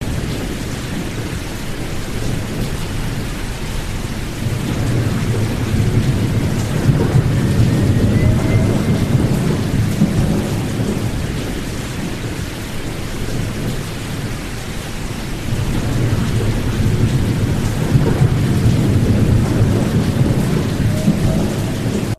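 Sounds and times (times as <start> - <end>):
monsoon: 0.0 - 22.1.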